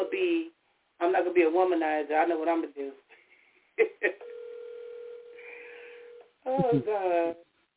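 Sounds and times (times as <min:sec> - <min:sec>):
speech: 0:01.4 - 0:03.0, 0:06.4 - 0:07.5
electronic ringback tone of an outgoing phone call: 0:04.2 - 0:06.2.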